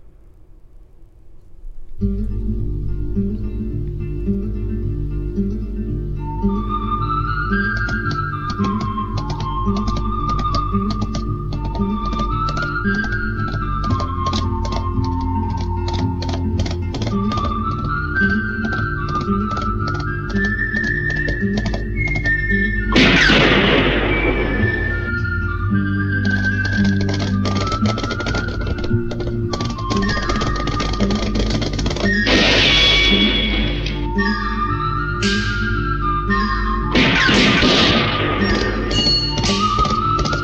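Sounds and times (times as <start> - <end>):
film music theme with low bass and high melody: 1.9 - 40.4
gunshots: 22.9 - 26.7, 31.6 - 34.6, 36.9 - 40.4.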